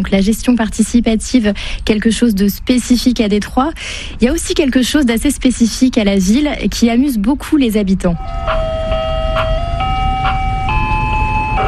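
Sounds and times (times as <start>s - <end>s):
speech: 0.0s - 9.5s
steady low rumble of traffic or engine noise: 0.0s - 11.6s
tinny electronic ice cream truck jingle: 8.2s - 11.6s.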